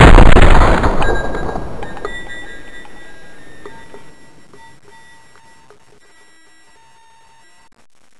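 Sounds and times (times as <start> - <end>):
MP5K gunfire: 0.0 - 2.4.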